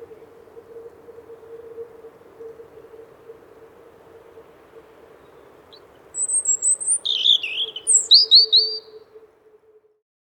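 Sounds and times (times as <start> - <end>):
soft constant hum: 0.0 - 9.9
European robin singing: 5.2 - 9.0.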